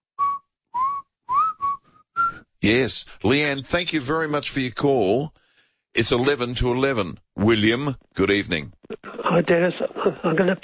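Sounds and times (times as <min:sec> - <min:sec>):
person whistling a short song melody: 0:00.0 - 0:02.5
speech: 0:02.6 - 0:05.4, 0:06.0 - 0:10.6.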